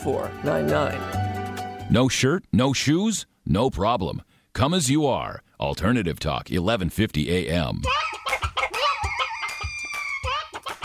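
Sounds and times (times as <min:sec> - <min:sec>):
speech: 0:00.0 - 0:01.2, 0:01.9 - 0:08.1
chickens clucking: 0:07.9 - 0:10.8
roosters crowing: 0:07.9 - 0:10.8.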